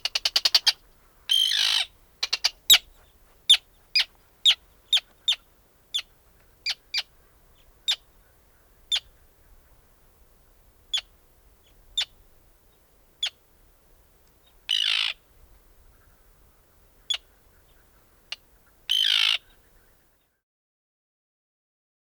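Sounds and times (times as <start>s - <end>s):
harsh rasping bird calls in the Arctic: 0.0s - 9.7s, 14.5s - 15.2s, 15.9s - 20.2s.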